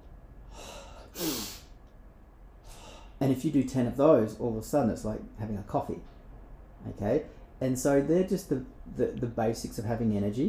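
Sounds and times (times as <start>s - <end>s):
deep breath in through the nose and short breath out the mouth: 0.4s - 1.7s, 2.6s - 3.2s
speech: 3.2s - 6.1s, 6.8s - 10.4s.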